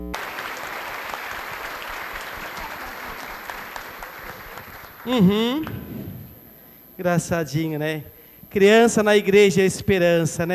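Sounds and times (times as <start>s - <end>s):
congregation applauding together: 0.0s - 5.3s
speech: 5.0s - 5.9s, 7.0s - 10.5s.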